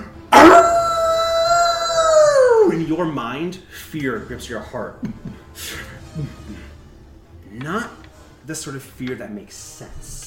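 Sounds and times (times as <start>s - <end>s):
terrifying howl: 0.3s - 2.8s
speech: 3.0s - 6.6s, 7.6s - 10.2s.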